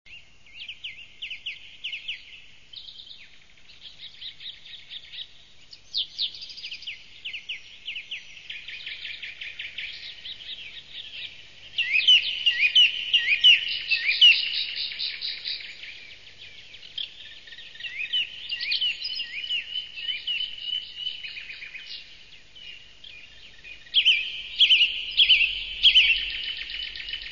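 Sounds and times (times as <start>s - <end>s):
birds singing in nature: 0.1s - 27.3s.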